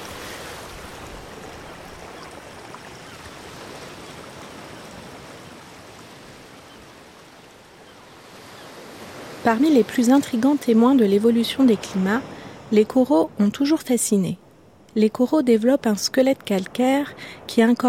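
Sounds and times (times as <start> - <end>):
small stream flowing in dry riverbed: 0.0 - 8.0
speech: 9.4 - 14.4, 15.0 - 17.8.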